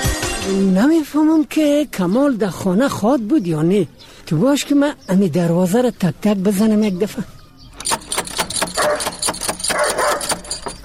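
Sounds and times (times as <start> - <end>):
speech: 0.4 - 7.4
dog barking in agitated bursts with growly yelps: 8.7 - 10.8.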